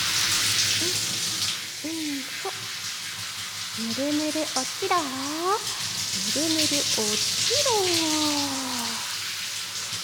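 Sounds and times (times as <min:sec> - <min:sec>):
running water rinsing soap foam away: 0:00.0 - 0:10.0
faint voice fragments: 0:03.8 - 0:09.2
speech: 0:04.0 - 0:08.6.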